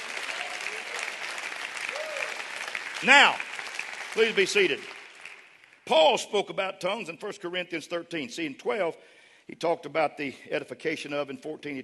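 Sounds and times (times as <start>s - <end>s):
large audience clapping: 0.0s - 5.8s
speech: 3.0s - 3.5s, 4.2s - 4.9s, 5.9s - 11.8s.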